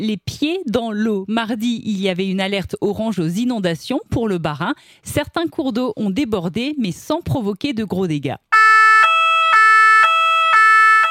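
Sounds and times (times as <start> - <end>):
speech: 0.0 - 8.5
fire truck siren blaring a two-tone hi-lo wail: 8.5 - 11.0.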